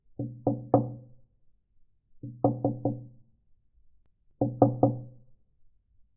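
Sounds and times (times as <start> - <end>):
knocking on a door: 0.2 - 1.0, 2.2 - 3.1, 4.4 - 5.2.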